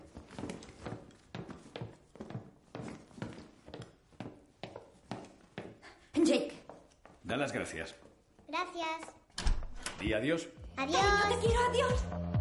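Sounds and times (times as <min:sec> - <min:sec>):
footsteps of a man going down a staircase carrying a girl and a suitcase: 0:00.0 - 0:09.3
speech: 0:07.3 - 0:09.2, 0:10.0 - 0:12.2.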